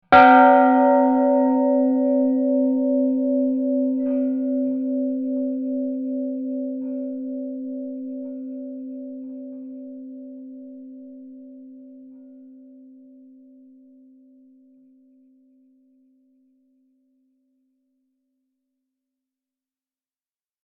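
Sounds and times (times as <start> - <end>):
church bell hit long and sustained: 0.1 - 13.6.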